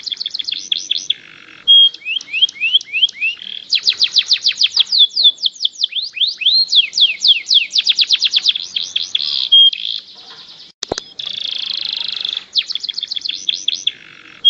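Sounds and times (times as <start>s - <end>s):
canary song: 0.0s - 14.4s.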